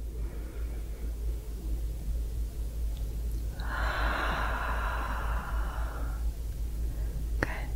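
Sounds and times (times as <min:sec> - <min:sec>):
constant low hum: 0:00.0 - 0:07.7
breath in: 0:03.6 - 0:06.2.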